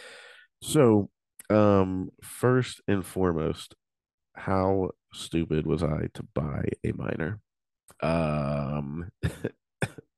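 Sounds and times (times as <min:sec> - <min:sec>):
speech: 0:00.7 - 0:03.8, 0:04.4 - 0:07.4, 0:08.0 - 0:09.6
sick person giving a drawn-out strained vocal groan: 0:08.0 - 0:09.0.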